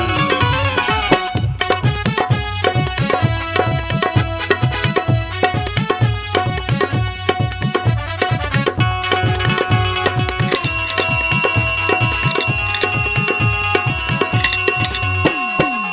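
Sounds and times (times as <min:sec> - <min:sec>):
loud busy music with a steady thumping beat: 0:00.0 - 0:15.9
bicycle bell ringing in quick bright trills: 0:10.5 - 0:15.9.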